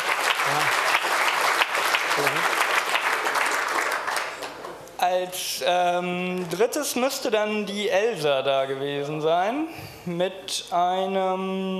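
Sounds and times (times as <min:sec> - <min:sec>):
crowd applauding: 0:00.0 - 0:04.8
speech: 0:05.1 - 0:11.7.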